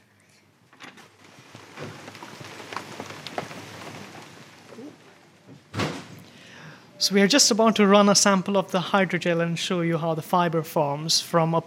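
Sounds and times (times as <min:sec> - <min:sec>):
steady rain falling outdoors: 0:00.8 - 0:10.2
heavier thump: 0:05.6 - 0:06.2
speech: 0:07.0 - 0:11.6.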